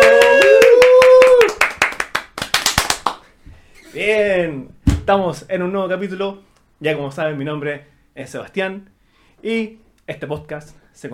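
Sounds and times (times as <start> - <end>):
person whooping: 0.0 - 1.6
hand clapping: 0.0 - 3.3
speech: 4.0 - 11.1.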